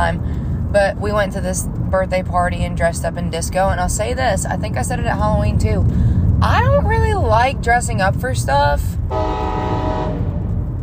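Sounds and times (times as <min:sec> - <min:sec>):
speech: 0:00.0 - 0:09.8
low rumble of a moving train: 0:00.0 - 0:10.8
train horn blaring: 0:09.1 - 0:10.5.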